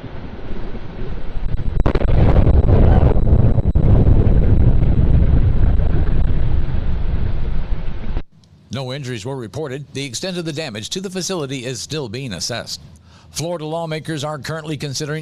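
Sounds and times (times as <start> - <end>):
distant rocket explosion: 0.0 - 8.3
heavy sustained rumble: 0.0 - 8.3
wind buffeting a small phone microphone: 0.0 - 8.3
speech: 8.8 - 15.2.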